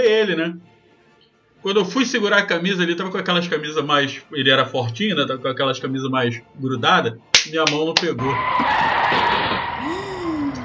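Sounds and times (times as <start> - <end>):
speech: 0.0 - 0.8, 1.6 - 10.0
car tires screeching under hard braking: 8.1 - 10.0.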